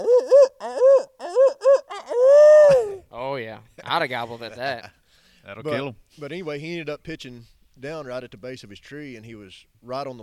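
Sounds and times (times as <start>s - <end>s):
imitated owl hoots: 0.0s - 3.0s
speech: 4.0s - 10.2s.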